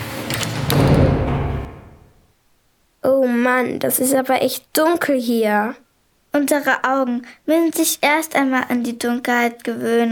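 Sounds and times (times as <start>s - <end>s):
heavy door slamming shut with a loud bang: 0.0s - 2.2s
speech: 3.2s - 10.0s.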